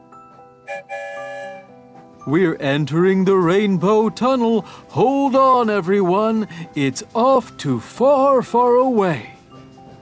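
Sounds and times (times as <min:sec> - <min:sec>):
steam-style train whistle blast signalling departure: 0:00.6 - 0:01.8
speech: 0:00.7 - 0:09.3.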